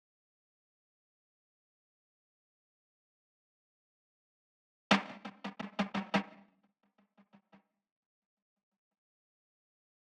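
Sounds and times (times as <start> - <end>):
snare roll: 4.9 - 6.4.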